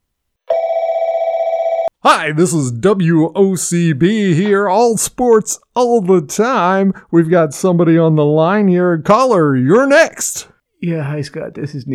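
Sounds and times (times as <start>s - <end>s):
telephone ringing with electronic trill: 0.5s - 1.9s
speech: 2.0s - 11.9s.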